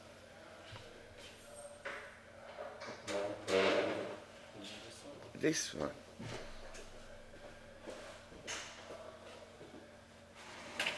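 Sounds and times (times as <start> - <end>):
door pushed shut with a creak: 3.0 - 4.2
speech: 5.4 - 6.4.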